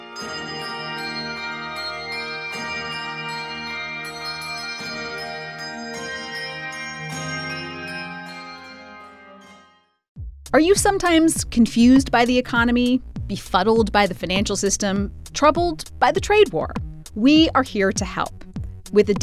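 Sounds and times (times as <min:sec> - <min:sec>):
handbell ensemble playing chords: 0:00.0 - 0:09.9
speech: 0:10.5 - 0:19.2.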